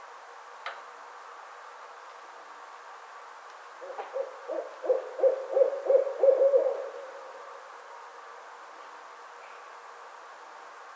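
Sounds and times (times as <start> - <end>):
barred owl hooting: 3.8 - 7.8.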